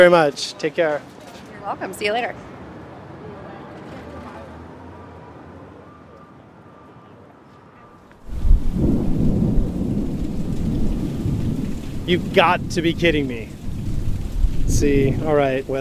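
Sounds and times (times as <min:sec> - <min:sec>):
speech: 0:00.0 - 0:02.5, 0:12.1 - 0:13.6, 0:14.7 - 0:15.7
heavy roaring summer downpour in New York: 0:08.2 - 0:15.7
loud crack of rolling thunder: 0:08.3 - 0:15.7.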